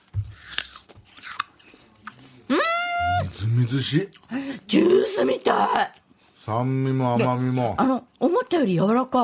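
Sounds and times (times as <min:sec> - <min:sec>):
crunching bites into a juicy Sanfuji apple from Shinshu sliced horizontally: 0:00.0 - 0:01.6
speech: 0:03.5 - 0:09.2.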